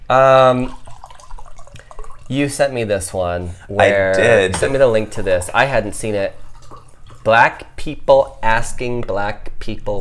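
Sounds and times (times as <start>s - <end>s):
speech: 0.1s - 0.8s, 2.3s - 6.4s, 7.2s - 9.9s
drink pouring into a glass: 0.6s - 2.8s, 4.7s - 7.7s.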